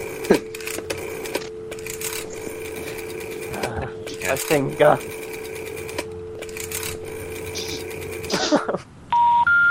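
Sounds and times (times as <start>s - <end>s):
telephone dialing tone for a dial-up connection: 0.0s - 8.3s
two loud clean electronic beeps at different pitches: 0.4s - 8.2s
speech: 4.3s - 5.2s.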